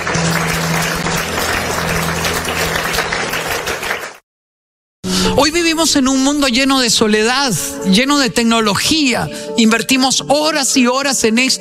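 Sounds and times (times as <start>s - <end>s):
audience applause: 0.0s - 4.2s
speech: 5.4s - 11.5s.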